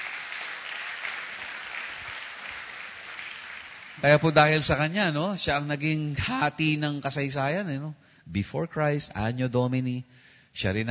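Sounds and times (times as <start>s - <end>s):
church congregation applauding during a worship service: 0.0s - 4.9s
speech: 4.0s - 10.8s.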